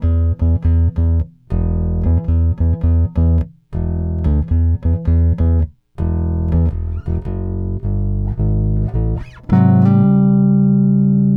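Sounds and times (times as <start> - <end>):
blues bass line: 0.0 - 11.3.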